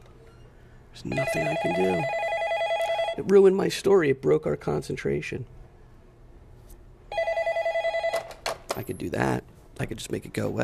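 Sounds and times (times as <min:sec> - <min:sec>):
speech: 0:01.0 - 0:02.2, 0:03.2 - 0:05.6, 0:08.8 - 0:10.6
telephone ringing with an electronic trill: 0:01.1 - 0:03.3, 0:07.1 - 0:08.4.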